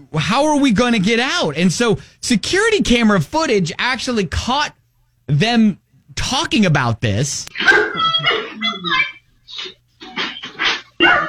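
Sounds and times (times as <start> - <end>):
speech: 0.0 - 7.8
dogs barking and yelping: 7.5 - 11.2.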